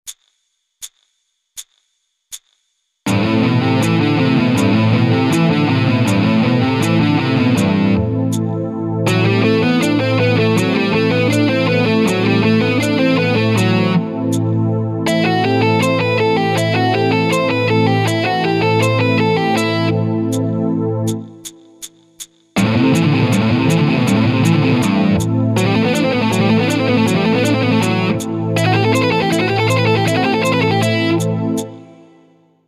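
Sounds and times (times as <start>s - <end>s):
guitar economy picking: 3.1s - 8.4s, 9.0s - 20.4s, 22.6s - 31.8s.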